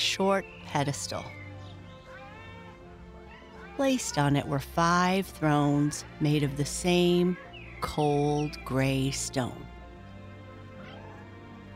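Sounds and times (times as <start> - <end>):
speech: 0.2 - 1.4, 3.8 - 9.7
many cats meowing and yowling: 1.1 - 8.7, 10.6 - 11.7.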